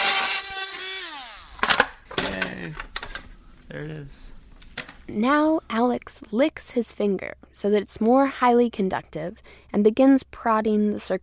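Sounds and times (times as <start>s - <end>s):
electric drill whining: 0.0s - 2.0s
toy plastic cracking: 1.5s - 3.3s, 4.6s - 5.1s
speech: 2.4s - 2.9s, 3.7s - 4.4s, 5.1s - 11.2s.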